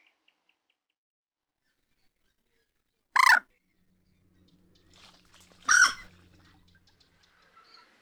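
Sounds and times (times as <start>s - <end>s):
moorhen calling: 3.2s - 3.4s, 4.4s - 6.8s.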